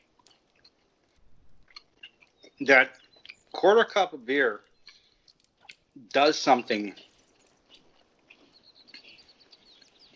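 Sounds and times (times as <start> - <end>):
crusty buttered corner of a round bread loaf being chewed: 0.0 - 3.6, 4.6 - 10.1
speech: 2.6 - 3.0, 3.6 - 4.7, 6.0 - 7.1.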